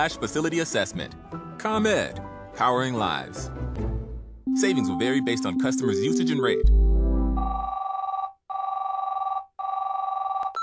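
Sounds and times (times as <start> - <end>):
speech: 0.0 - 3.9, 4.6 - 6.8
telephone ringing with buzzy trilling electronic tone: 4.5 - 10.6.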